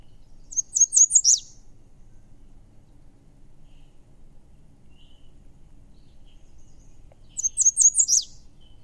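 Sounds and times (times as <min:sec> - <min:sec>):
American redstart singing: 0:00.0 - 0:08.8
faint low rumble: 0:00.0 - 0:08.8.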